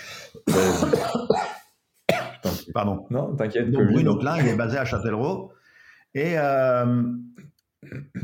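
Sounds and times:
person coughing: 0:00.4 - 0:02.8, 0:04.4 - 0:04.7
speech: 0:02.8 - 0:08.2.

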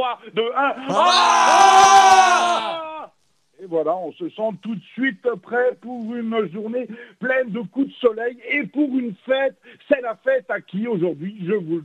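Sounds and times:
speech: 0:00.0 - 0:02.7, 0:03.6 - 0:11.8
group shouting together in unison: 0:00.9 - 0:02.8.

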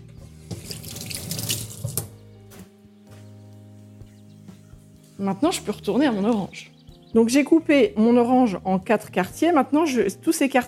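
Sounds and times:
water running into a kitchen sink as cooked salted lentils are drained: 0:00.4 - 0:02.1
speech: 0:05.2 - 0:10.6.

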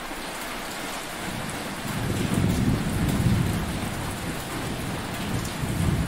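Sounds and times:
heavy rain in a thunderstorm: 0:00.0 - 0:06.0
deep thunder rumbling: 0:01.3 - 0:06.0.

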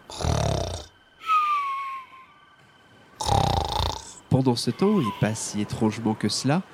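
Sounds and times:
heavy snoring of exhausted sailors in a small port town: 0:00.0 - 0:00.9, 0:03.2 - 0:04.2
speech: 0:04.3 - 0:06.7.

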